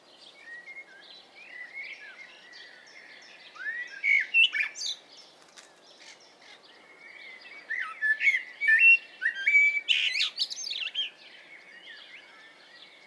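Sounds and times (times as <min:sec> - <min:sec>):
Eurasian blackbird Turdus merula singing mellow whistled phrases: 0:01.5 - 0:05.0, 0:07.5 - 0:12.8.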